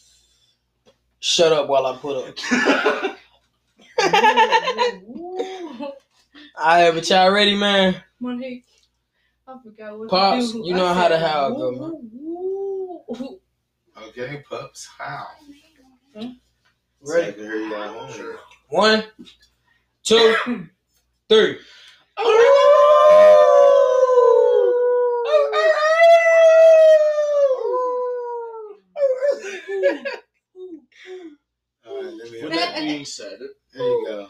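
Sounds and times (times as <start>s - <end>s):
speech: 1.2s - 3.2s, 4.1s - 6.0s, 6.6s - 8.7s, 9.5s - 12.2s, 13.1s - 13.4s, 14.0s - 15.6s, 16.2s - 16.4s, 17.0s - 23.5s, 29.8s - 30.2s, 31.9s - 34.2s
laughter: 2.4s - 3.2s, 4.0s - 6.0s, 29.3s - 30.2s
man howling like a dog: 10.7s - 13.1s, 22.2s - 29.5s.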